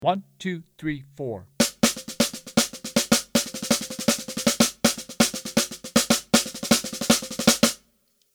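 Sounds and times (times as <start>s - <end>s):
swing eighths rhythm music: 1.6s - 7.8s.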